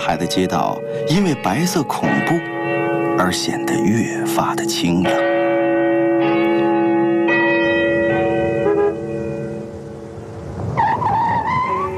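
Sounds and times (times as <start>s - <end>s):
speech: 0.0s - 5.3s
large tower bell chiming: 0.0s - 10.6s
car tires screeching and skidding: 10.6s - 11.9s.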